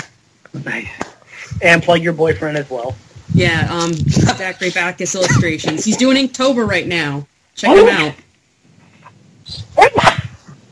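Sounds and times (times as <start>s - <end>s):
speech: 0.5s - 8.2s
loud sneeze: 9.7s - 10.4s.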